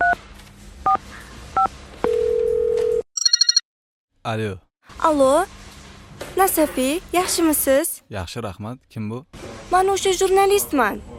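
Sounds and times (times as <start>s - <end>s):
telephone ringback tone on an outgoing call: 2.1s - 3.6s
telephone dialing key-tone beeps on an outgoing call: 3.2s - 3.6s
speech: 4.3s - 5.6s, 6.4s - 11.1s.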